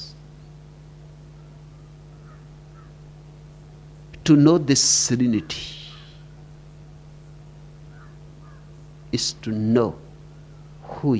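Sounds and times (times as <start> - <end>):
low hum: 0.0 - 11.1
crows cawing: 1.3 - 3.1, 5.4 - 6.4, 7.9 - 8.8, 10.3 - 10.8
speech: 4.3 - 5.8, 9.1 - 10.0, 11.0 - 11.1.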